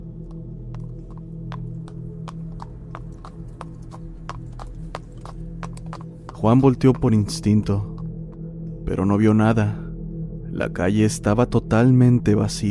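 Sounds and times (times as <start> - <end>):
constant low hum: 0.0 - 12.6
horse hooves clip-clopping at slow walk: 0.2 - 8.4
speech: 6.4 - 7.9, 8.9 - 9.8, 10.6 - 12.6.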